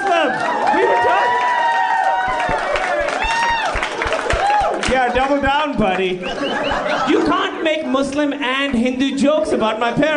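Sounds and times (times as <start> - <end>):
live audience cheering and whooping: 0.0 - 5.4, 6.2 - 7.3
live audience clapping: 0.0 - 6.1
laughter: 2.3 - 8.2
speech: 5.3 - 10.1.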